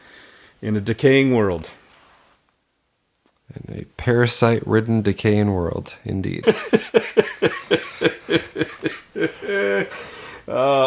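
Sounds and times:
speech: 0.6s - 1.8s, 3.5s - 7.1s
laugh turning into coughing: 6.4s - 10.1s
drawn-out voiced wheezes: 9.1s - 10.8s.

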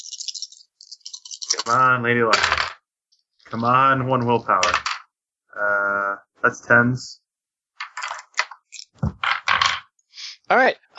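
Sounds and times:
dice rattling across a hard tabletop for a role-playing game: 1.4s - 2.8s, 3.4s - 5.1s, 7.8s - 9.9s
speech: 1.6s - 2.7s, 3.5s - 4.9s, 5.6s - 7.2s, 10.5s - 10.8s.

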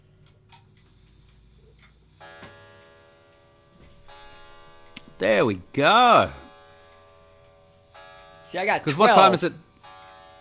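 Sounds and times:
low hum: 0.0s - 10.0s
clock ticking: 0.2s - 10.3s
bright sustained ringing tone: 2.2s - 10.3s
speech: 5.2s - 6.4s, 8.5s - 9.6s.

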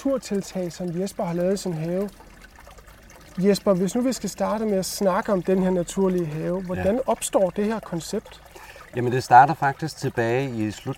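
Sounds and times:
speech: 0.0s - 2.3s, 3.4s - 10.9s
running water of a small brook in a natural garden: 0.0s - 10.9s.

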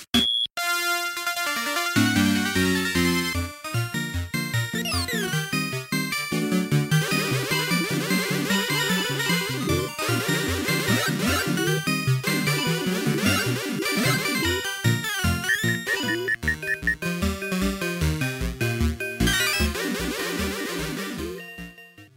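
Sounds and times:
1985 Namco arcade video game music: 0.1s - 22.1s
bright beeping tones: 15.5s - 17.1s.

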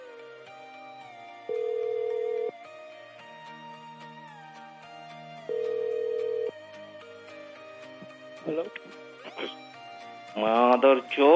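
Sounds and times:
quiet continuous music: 0.0s - 11.3s
phone line ringing during call transfer to an inn front desk: 1.5s - 2.6s, 5.5s - 6.6s
speech: 8.5s - 9.0s, 10.4s - 11.3s.

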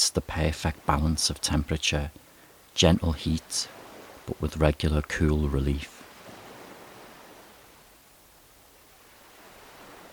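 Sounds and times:
soft ocean waves washing against a shoreline: 0.0s - 4.7s, 5.7s - 10.1s
speech: 0.2s - 2.2s, 2.8s - 6.0s.

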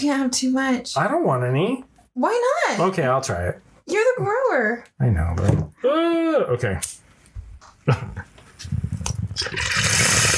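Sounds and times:
speech: 0.0s - 7.0s, 7.9s - 8.3s
water pouring into a bong: 9.4s - 10.3s.

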